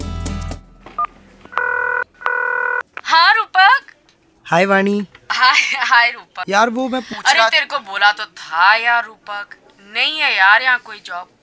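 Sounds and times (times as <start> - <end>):
telephone dialing tones: 1.5 - 2.8
speech: 4.5 - 11.4.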